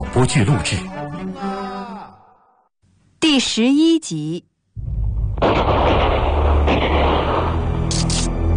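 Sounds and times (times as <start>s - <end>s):
speech: 0.2s - 1.0s, 3.4s - 4.9s
soldier firing gunfire until the bullets run out: 5.4s - 8.0s.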